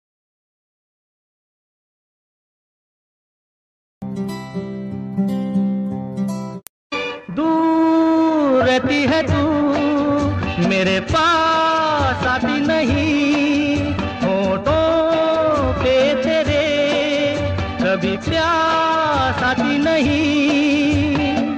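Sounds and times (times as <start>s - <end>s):
old Hindi romantic song ringtone: 4.0s - 21.5s.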